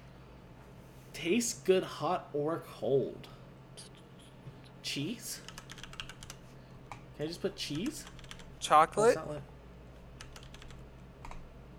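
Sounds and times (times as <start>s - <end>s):
speech: 1.2s - 3.9s, 4.9s - 5.5s, 7.2s - 9.5s
typing on a computer keyboard: 5.4s - 6.4s, 7.7s - 8.5s, 10.2s - 11.4s.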